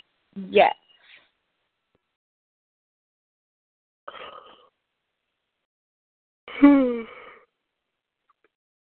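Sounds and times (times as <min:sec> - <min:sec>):
speech: 0:00.4 - 0:00.8
person yawning aloud with a drawn-out voiced groan: 0:06.5 - 0:07.2.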